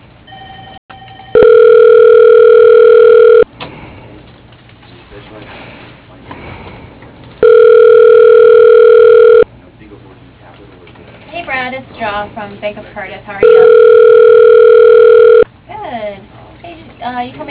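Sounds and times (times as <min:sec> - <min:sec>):
telephone ringing on the line after dialing: 0:00.3 - 0:03.5, 0:07.4 - 0:09.5, 0:13.4 - 0:15.4
speech: 0:12.3 - 0:13.9, 0:17.1 - 0:17.5.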